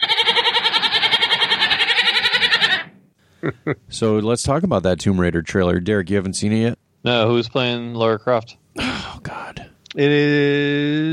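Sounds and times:
goat bleating: 0.0s - 2.9s
speech: 3.4s - 11.1s.

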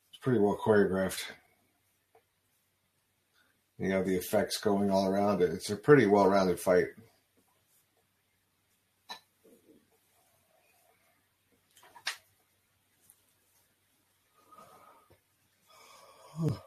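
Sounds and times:
speech: 0.2s - 1.4s, 3.8s - 7.1s, 16.4s - 16.6s
person yawning: 16.1s - 16.6s.

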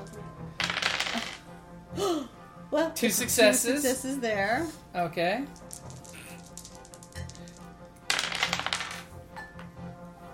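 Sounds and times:
dice rolling and clattering together across a surface: 0.0s - 1.4s, 5.4s - 9.1s
speech: 2.0s - 5.6s.

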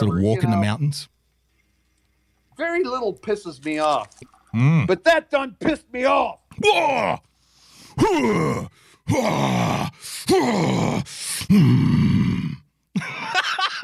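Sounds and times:
speech: 0.0s - 1.2s, 2.6s - 7.3s, 8.0s - 12.2s
man growling: 4.6s - 4.9s, 8.0s - 12.6s.

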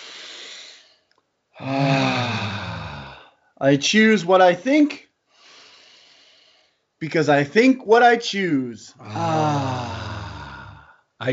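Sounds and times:
deep breath during a guided calming exercise: 0.0s - 3.6s, 5.3s - 6.9s, 9.0s - 11.2s
speech: 1.6s - 1.9s, 3.6s - 5.0s, 7.0s - 10.0s, 11.2s - 11.3s.

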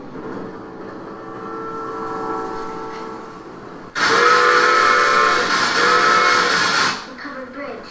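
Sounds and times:
toy train set steam whistle: 4.0s - 6.8s.

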